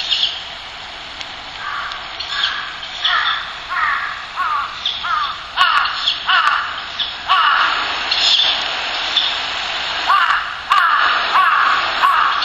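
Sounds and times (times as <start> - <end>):
steady background noise: 0.0 - 12.4
crow cawing: 1.6 - 7.8, 10.1 - 12.4.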